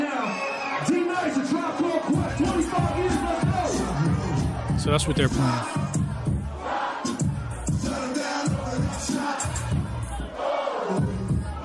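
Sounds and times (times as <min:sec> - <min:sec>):
large crowd cheering and shouting in celebration: 0:00.0 - 0:11.6
speech: 0:04.8 - 0:05.8.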